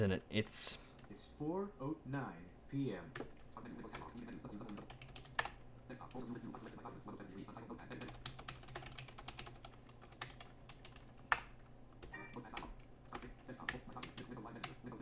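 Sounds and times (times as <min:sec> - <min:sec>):
speech: 0:00.0 - 0:05.0, 0:05.9 - 0:08.1
faint low hum: 0:00.0 - 0:14.9
typing on a wireless computer keyboard: 0:03.9 - 0:05.6, 0:07.9 - 0:14.9.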